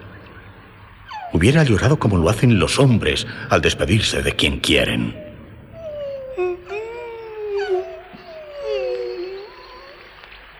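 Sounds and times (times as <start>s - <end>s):
wolf whimpering: 1.0s - 1.9s, 5.1s - 10.4s
speech: 1.3s - 5.2s.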